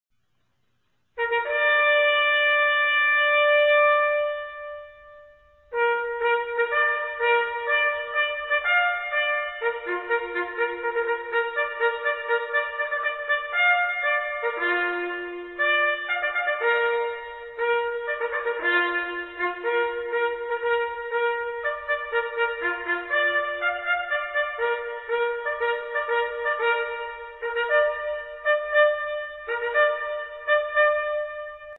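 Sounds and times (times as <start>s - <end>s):
cornet playing a bugle call: 1.2s - 31.7s.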